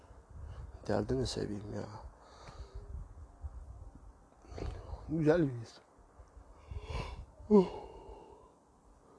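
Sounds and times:
speech: 0.8 - 2.1, 5.1 - 5.9, 7.5 - 7.8
quiet breathing: 1.9 - 3.1, 4.4 - 5.1, 6.5 - 9.1
person yawning: 6.8 - 8.4.

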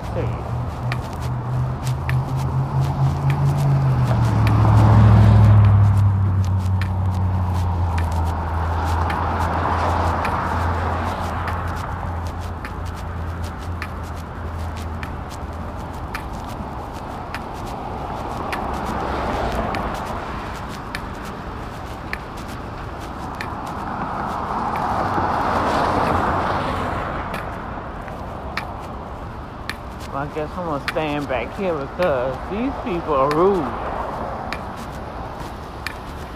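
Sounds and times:
car driving past through standing water: 0.0 - 36.3
steady wet road noise: 0.0 - 36.3
speech: 0.2 - 0.5, 30.4 - 33.8.

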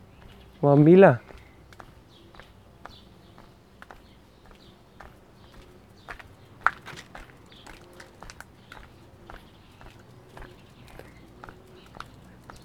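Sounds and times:
footsteps of a person walking with a dog: 0.2 - 12.6
speech: 0.6 - 1.3.

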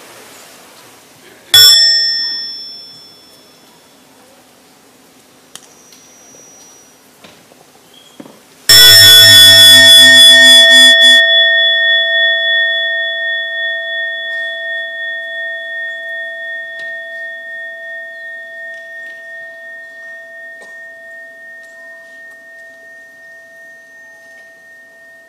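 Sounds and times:
meditation bell struck and ringing: 1.6 - 4.1, 8.7 - 25.2.

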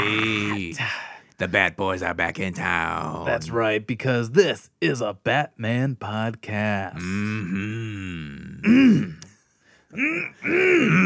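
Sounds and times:
speech: 1.4 - 9.2, 9.9 - 11.0
rough loud throat clearing: 7.4 - 9.3, 10.0 - 11.0.

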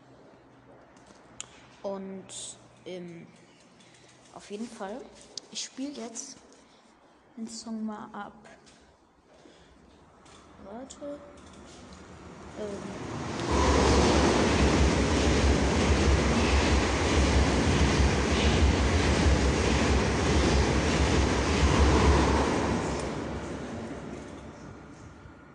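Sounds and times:
speech: 1.8 - 3.5, 4.4 - 6.4, 7.4 - 8.6, 10.7 - 11.8, 12.6 - 13.6
train rumbling overhead above an enclosed space: 11.4 - 25.5.

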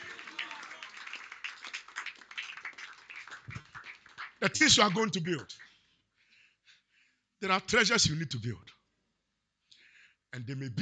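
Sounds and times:
crowd shouting and cheering: 0.0 - 1.2
crowd clapping: 0.0 - 5.8
speech: 4.4 - 5.6, 7.4 - 8.7, 10.4 - 10.8.

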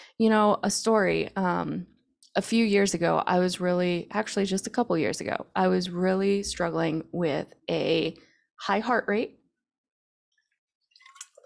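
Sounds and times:
speech: 0.2 - 9.4
person sipping water: 11.0 - 11.4.

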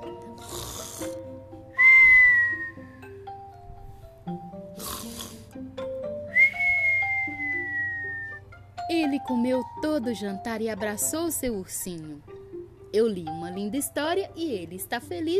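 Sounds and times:
soft music: 0.0 - 15.3
cartoon snoring: 0.3 - 1.2, 4.7 - 5.6
speech: 9.0 - 12.3, 12.9 - 15.3.

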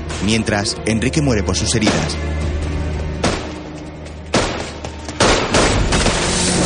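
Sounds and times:
speech: 0.2 - 2.6
gunshots fired at a police patrol car: 1.8 - 2.3, 3.2 - 3.6, 4.3 - 6.6.

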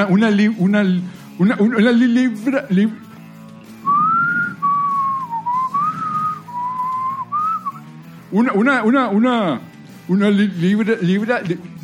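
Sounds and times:
speech: 0.0 - 3.1, 8.3 - 11.8
person whistling a wavering tune: 3.8 - 7.9.

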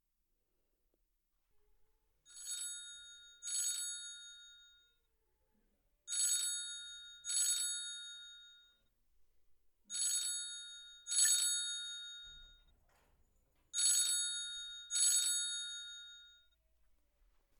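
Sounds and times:
telephone ringing in a London phone booth: 2.3 - 5.0, 6.1 - 8.9, 9.9 - 12.8, 13.7 - 16.6.

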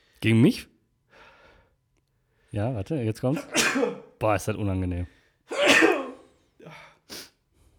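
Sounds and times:
speech: 0.2 - 0.7, 2.5 - 5.8
person sneezing: 3.3 - 4.1, 5.5 - 6.3.

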